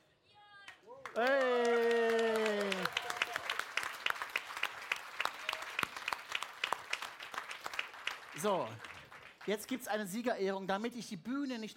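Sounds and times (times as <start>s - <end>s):
small audience applause at a stage event: 1.0s - 10.0s
brief voiced cheer: 1.1s - 3.6s
speech: 1.2s - 1.7s, 8.4s - 8.9s, 9.5s - 11.7s.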